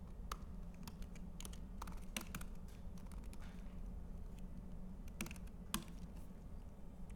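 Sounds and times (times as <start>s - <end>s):
typing a password on a computer keyboard: 0.1s - 3.7s, 4.3s - 6.2s.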